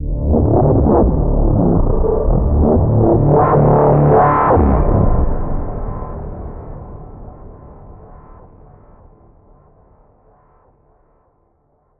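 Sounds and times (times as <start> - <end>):
warping music: 0.0 - 6.7.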